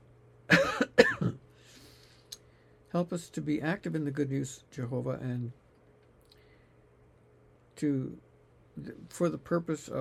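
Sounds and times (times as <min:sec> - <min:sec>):
person coughing from a tickle in the throat: 0:00.5 - 0:01.4
speech: 0:03.0 - 0:05.6, 0:07.8 - 0:09.9.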